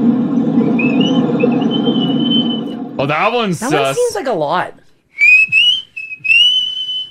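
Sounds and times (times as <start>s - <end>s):
human whistle signaling a breaking ball: 0.8s - 2.8s, 5.1s - 7.0s
speech: 3.0s - 4.8s.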